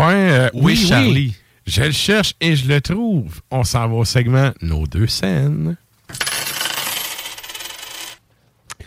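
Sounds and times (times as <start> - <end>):
speech: 0.5 - 6.3
coins pouring and jingling: 6.1 - 8.2.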